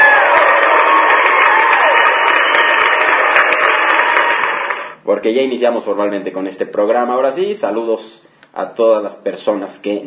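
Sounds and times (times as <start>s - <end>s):
crowd applauding: 0.0s - 5.0s
speech: 5.2s - 10.0s.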